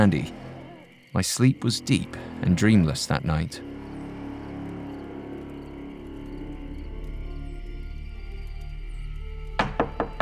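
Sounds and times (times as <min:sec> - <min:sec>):
speech: 0:00.0 - 0:00.4, 0:01.1 - 0:03.7
low steady droning rumble: 0:01.8 - 0:09.4
fist pounding on a front door: 0:09.6 - 0:10.2.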